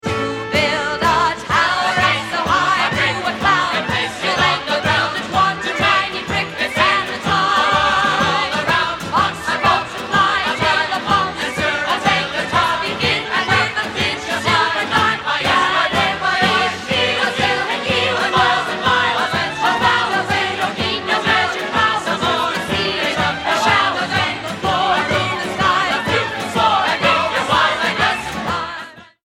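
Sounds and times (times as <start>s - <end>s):
polyphonic music: 0.2s - 28.8s.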